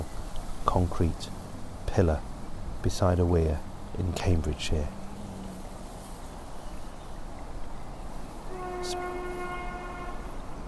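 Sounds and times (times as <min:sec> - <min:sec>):
train passing: 0:00.0 - 0:10.6
speech: 0:00.7 - 0:05.0
steady droning horn-like train tone: 0:08.5 - 0:10.5.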